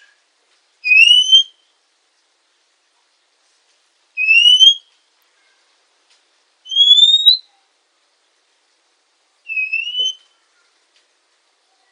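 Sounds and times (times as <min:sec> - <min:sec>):
female Oriental magpie-robin drawn-out rising whistle: 0:00.8 - 0:01.6, 0:04.2 - 0:04.9, 0:06.6 - 0:07.5, 0:09.5 - 0:10.4.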